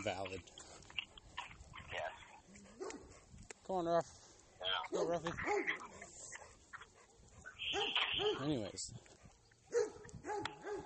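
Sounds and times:
speech: 0.0s - 0.8s, 3.7s - 4.2s, 4.9s - 5.9s, 7.7s - 9.1s
dogs barking and whimpering with yips and whines: 2.4s - 3.2s, 4.9s - 8.6s, 9.2s - 10.8s.

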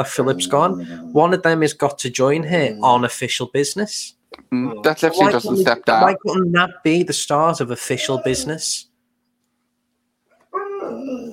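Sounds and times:
speech: 0.0s - 8.9s
dog giving a drawn-out whiny bark-like vocalization: 8.0s - 8.6s, 10.3s - 11.3s.

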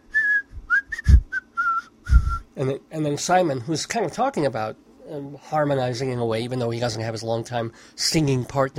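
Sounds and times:
person whistling a melody from a song's outro: 0.0s - 2.5s
soft low thumps: 0.4s - 1.4s, 2.1s - 2.5s
speech: 2.6s - 8.7s.

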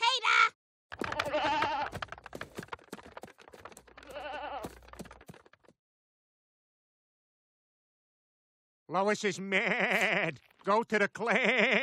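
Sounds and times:
clattering and knocking: 0.9s - 5.8s
goats bleating: 1.0s - 2.0s, 4.0s - 5.0s, 9.4s - 10.4s, 11.2s - 11.8s
speech: 8.9s - 11.8s.

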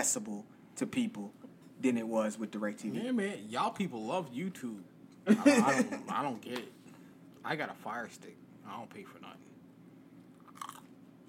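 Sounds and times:
speech: 0.0s - 6.8s, 7.4s - 9.4s
laughter: 5.3s - 6.2s
crunch of someone biting into chicken nuggets: 10.4s - 10.9s.

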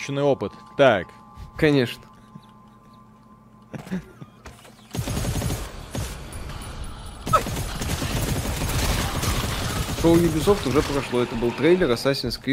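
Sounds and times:
speech: 0.0s - 2.1s, 3.7s - 4.1s, 10.0s - 12.5s
deployed turret gunfire in a video game: 4.9s - 6.6s, 7.2s - 11.2s.

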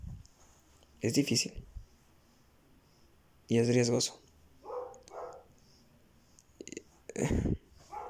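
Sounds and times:
speech: 1.0s - 1.8s, 3.5s - 4.2s
dog barking: 4.6s - 5.5s, 7.9s - 8.0s.

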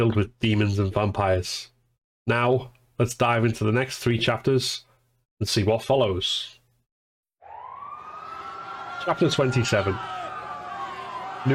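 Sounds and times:
speech: 0.0s - 1.7s, 2.3s - 6.6s, 9.0s - 10.2s
emergency vehicle siren wailing: 7.4s - 11.5s.

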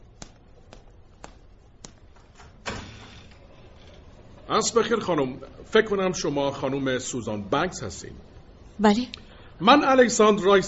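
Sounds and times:
door being opened: 2.2s - 4.2s
speech: 4.5s - 10.6s.

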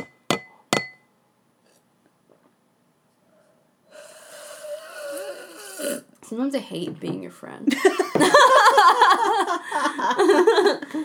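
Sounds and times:
glasses clinking in a toast: 0.0s - 1.0s
breathy snorting noise: 3.9s - 6.1s
speech: 6.3s - 8.4s
laughter: 7.7s - 11.0s.

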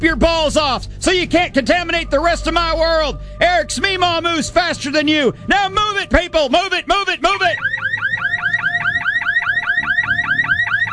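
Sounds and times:
faint low rumble: 0.0s - 6.5s
speech: 0.0s - 7.8s
loud electronic alarm blaring in a fast repeating whoop: 6.8s - 10.9s.

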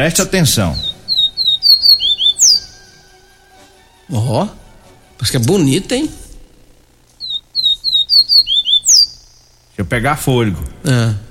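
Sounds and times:
speech: 0.0s - 0.9s, 4.1s - 4.6s, 5.2s - 6.2s, 9.8s - 11.3s
person whistling imitation of papa-capim seedeater call: 0.8s - 2.8s, 7.3s - 9.1s.

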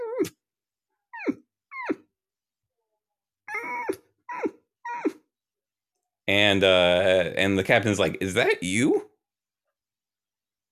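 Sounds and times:
person imitating a dog whining at a door: 0.0s - 0.4s, 1.1s - 2.1s, 3.5s - 5.3s
speech: 6.3s - 9.1s.

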